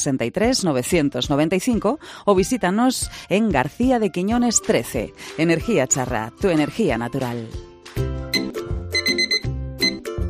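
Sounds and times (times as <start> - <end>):
speech: 0.0 - 7.7
alarm clock ringing with electronic melodic tone: 8.4 - 10.0.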